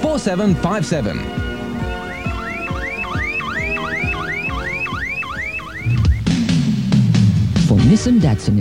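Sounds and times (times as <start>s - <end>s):
speech: 0.2s - 1.5s, 7.8s - 8.6s
car alarm whooping in a rising sweep: 1.3s - 6.6s.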